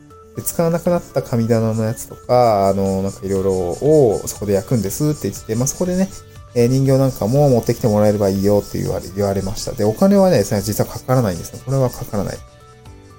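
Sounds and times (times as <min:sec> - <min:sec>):
speech: 0:00.4 - 0:12.5
cicadas buzzing loudly outdoors: 0:00.7 - 0:10.8.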